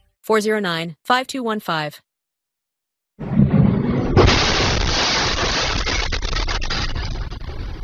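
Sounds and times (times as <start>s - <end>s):
speech: 0.3s - 2.0s
heavy explosion from airstrike in city: 3.2s - 7.8s
long roaring rumble with crackling debris: 3.2s - 7.8s.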